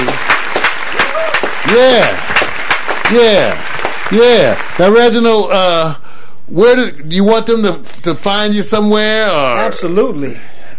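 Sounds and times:
people clapping: 0:00.0 - 0:05.2
person whooping: 0:01.0 - 0:02.2
speech: 0:01.7 - 0:02.2, 0:03.1 - 0:10.5.

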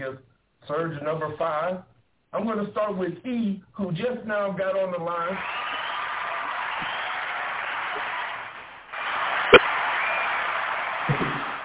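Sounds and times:
speech: 0:00.0 - 0:05.7
crowd cheering loudly: 0:05.2 - 0:11.6
sharp knock: 0:11.1 - 0:11.5.

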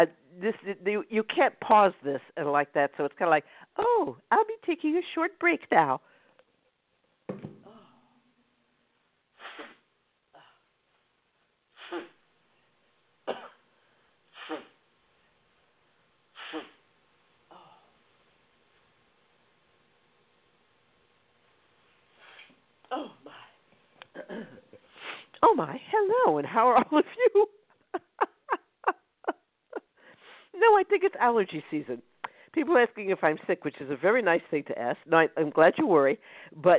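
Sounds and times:
speech: 0:00.0 - 0:06.1, 0:25.4 - 0:27.6, 0:30.6 - 0:36.7
forceful nose blows and snorts: 0:09.3 - 0:10.5, 0:11.7 - 0:12.3, 0:14.3 - 0:14.8, 0:16.3 - 0:16.9, 0:24.8 - 0:25.4
person sniffing: 0:09.4 - 0:09.9, 0:11.7 - 0:12.2, 0:14.3 - 0:14.8, 0:16.4 - 0:16.8, 0:22.2 - 0:22.6, 0:24.9 - 0:25.4, 0:30.1 - 0:30.6.

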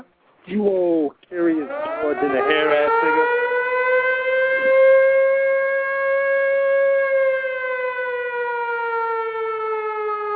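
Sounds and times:
speech: 0:00.5 - 0:03.4
air raid siren wailing: 0:01.5 - 0:10.3.

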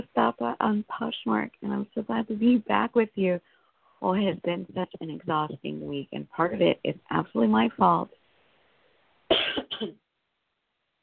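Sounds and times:
speech: 0:00.0 - 0:08.2, 0:09.3 - 0:10.0
person with a lingering cough after the flu coughing: 0:09.3 - 0:10.0.

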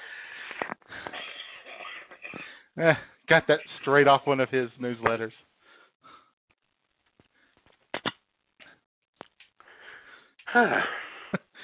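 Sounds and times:
wheezy rasping coughing: 0:01.0 - 0:02.6
speech: 0:02.8 - 0:05.4, 0:10.6 - 0:11.0.

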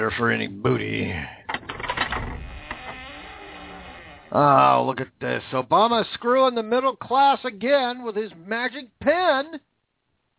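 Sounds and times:
speech: 0:00.0 - 0:01.4, 0:04.3 - 0:09.7
treasure chest creaking and clattering open with a ratcheting rattle: 0:01.5 - 0:04.6.

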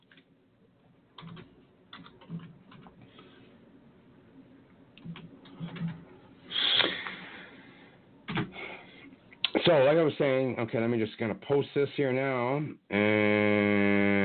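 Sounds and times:
fingers typing on a computer keyboard: 0:01.2 - 0:03.0, 0:05.0 - 0:06.0
speech: 0:09.6 - 0:14.1.

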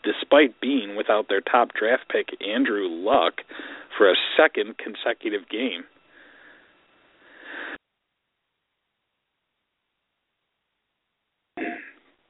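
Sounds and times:
speech: 0:00.3 - 0:05.9
throat clearing: 0:11.6 - 0:12.0.

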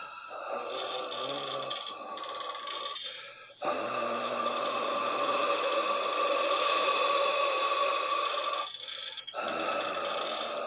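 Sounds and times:
deep rasping ghostly breathing with hollow eerie tone: 0:00.0 - 0:10.6.

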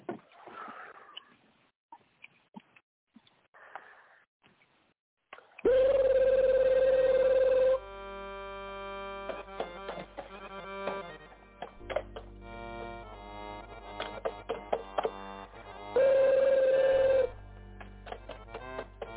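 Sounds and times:
telephone ringing with electronic tone and warbling ring: 0:05.7 - 0:07.8, 0:15.9 - 0:17.3.

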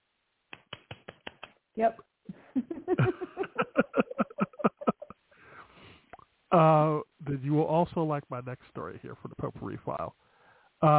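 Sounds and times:
hands clapping: 0:00.5 - 0:01.6
speech: 0:01.8 - 0:04.2, 0:06.5 - 0:10.9
laughter: 0:02.6 - 0:05.1.

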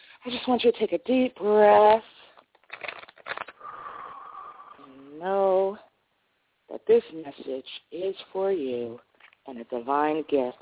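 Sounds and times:
speech: 0:00.2 - 0:02.1, 0:05.2 - 0:05.9, 0:06.7 - 0:10.6
deck of tarot cards being shuffled: 0:01.9 - 0:03.6.

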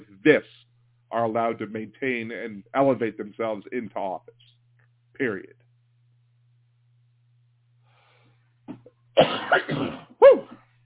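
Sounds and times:
speech: 0:00.2 - 0:04.5, 0:05.2 - 0:05.6, 0:08.7 - 0:10.5
person coughing: 0:08.7 - 0:10.2.

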